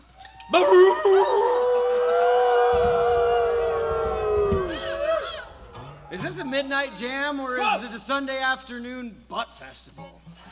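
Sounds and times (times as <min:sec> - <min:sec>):
several people howling in imitation of dogs: 0:00.5 - 0:07.9
speech: 0:06.6 - 0:10.5.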